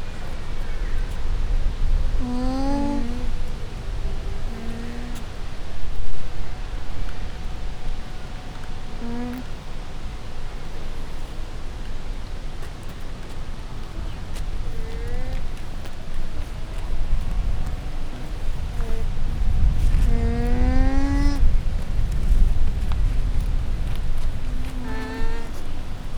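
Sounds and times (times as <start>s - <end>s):
wind at a zoo: 0.0s - 26.1s
llama at a zoo: 0.2s - 9.7s, 13.7s - 26.1s
people having a conversation at a zoo: 2.2s - 5.4s, 6.5s - 9.5s, 13.8s - 19.2s, 19.9s - 21.5s, 24.4s - 25.6s.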